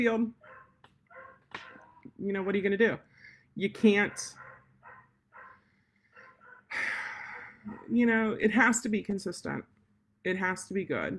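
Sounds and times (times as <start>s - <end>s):
speech: 0.0s - 0.4s, 2.1s - 4.4s, 7.6s - 11.1s
dogs barking: 0.4s - 2.7s, 4.0s - 8.0s.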